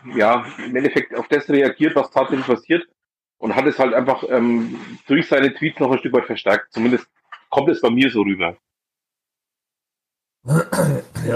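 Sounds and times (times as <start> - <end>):
speech: 0.0 - 8.7, 10.4 - 11.3
rough throat clearing with a low grunting edge: 10.5 - 11.3.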